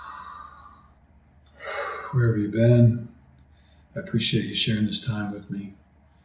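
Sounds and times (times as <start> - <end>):
deep cleansing breath: 0.0 - 2.3, 3.4 - 4.0
speech: 2.1 - 3.1, 4.0 - 5.8.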